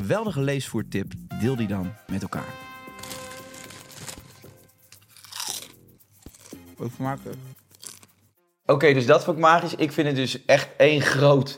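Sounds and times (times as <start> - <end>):
speech: 0.1 - 2.6, 6.8 - 7.6, 8.7 - 11.5
potato chips being chewed: 2.8 - 6.7, 7.6 - 8.2.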